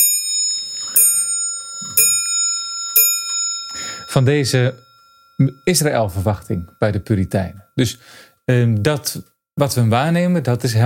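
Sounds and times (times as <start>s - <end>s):
clock chiming: 0.0s - 8.0s
speech: 4.1s - 10.8s.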